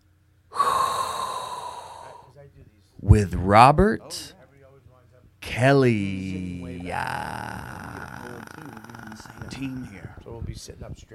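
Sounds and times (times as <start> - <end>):
long airy inhale: 0.5 - 2.3
speech: 2.5 - 4.4, 5.5 - 11.1.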